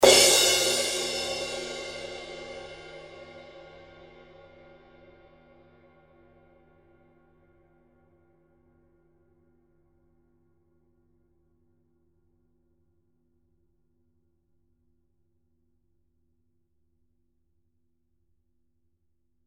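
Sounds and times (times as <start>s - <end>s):
20in custom crash cymbal: 0.0s - 5.1s.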